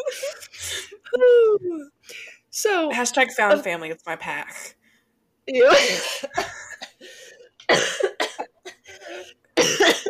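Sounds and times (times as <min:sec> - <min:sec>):
speech: 0:00.1 - 0:02.0, 0:02.6 - 0:04.8, 0:05.5 - 0:06.5
harsh loud coughing fit: 0:05.7 - 0:10.0.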